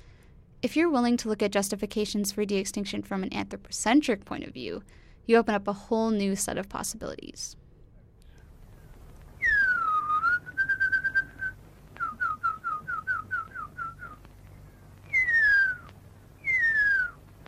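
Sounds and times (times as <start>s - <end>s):
speech: 0.6s - 7.6s
tracker whistling the call of the huia: 9.4s - 14.2s, 15.1s - 17.2s.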